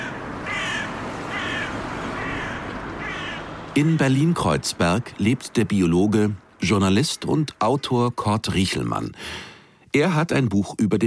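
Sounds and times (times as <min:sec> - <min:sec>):
crows cawing in the Kreuzberg district of Berlin: 0:00.0 - 0:03.8
constant low city hum in Berlin: 0:00.0 - 0:11.0
speech: 0:03.8 - 0:11.0.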